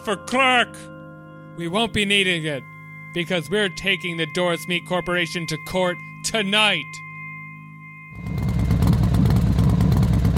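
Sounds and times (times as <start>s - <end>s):
speech: 0.0s - 1.0s, 1.6s - 7.0s
low hum: 1.0s - 10.3s
motorcycle engine running: 8.2s - 10.3s.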